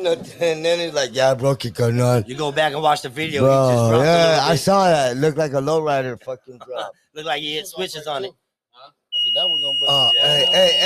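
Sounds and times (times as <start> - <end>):
speech: 0.0 - 10.8
smoke alarm beeping: 9.1 - 10.8.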